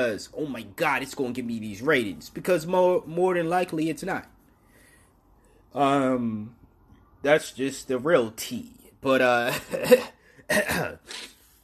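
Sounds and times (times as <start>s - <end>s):
speech: 0.0s - 4.4s, 5.7s - 6.6s, 7.2s - 11.3s
person clearing throat: 9.5s - 11.5s.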